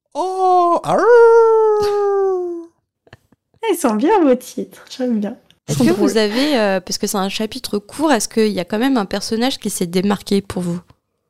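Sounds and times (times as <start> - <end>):
person imitating a wolf howl: 0.1 - 2.7
speech: 0.2 - 2.0, 3.8 - 10.9.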